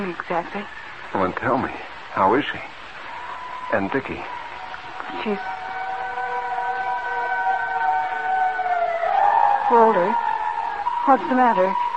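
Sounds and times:
speech: 0.0 - 2.8, 3.7 - 4.4, 5.1 - 5.7, 9.7 - 10.2, 11.1 - 11.8
fire siren wailing: 3.0 - 11.9.

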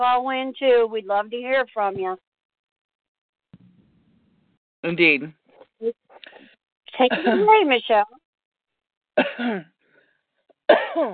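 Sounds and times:
speech: 0.0 - 2.3, 4.8 - 8.2, 9.2 - 9.7, 10.7 - 11.1
person coughing: 7.0 - 7.6, 9.2 - 9.7, 10.7 - 11.1
person clearing throat: 7.1 - 7.5, 9.2 - 9.7, 10.7 - 11.1.

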